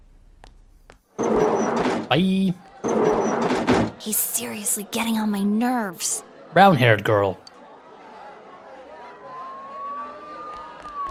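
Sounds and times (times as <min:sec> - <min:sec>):
speech: 0:02.1 - 0:03.0, 0:04.0 - 0:07.5
crowd noise: 0:02.2 - 0:11.0
police car siren wailing: 0:09.2 - 0:11.0.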